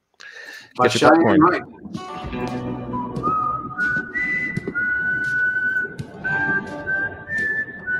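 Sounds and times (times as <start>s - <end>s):
speech: 0.7s - 2.8s
whistled melody in a Kickstarter video: 2.4s - 7.9s.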